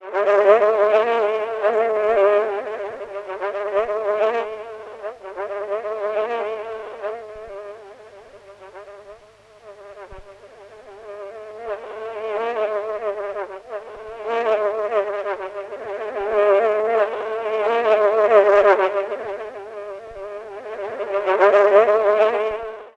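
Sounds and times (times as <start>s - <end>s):
low-pitched fly buzzing: 0.0s - 22.9s.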